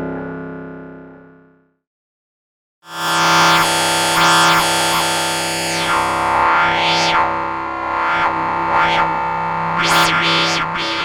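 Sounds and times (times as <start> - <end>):
Moog modular synthesizer: 2.9 - 11.0.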